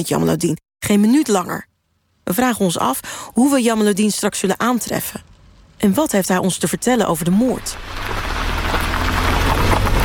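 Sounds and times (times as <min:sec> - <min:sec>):
speech: 0:00.0 - 0:01.7, 0:02.3 - 0:08.3
low constant rumble: 0:07.2 - 0:10.0
heavy rain in a cloudburst: 0:07.6 - 0:10.0.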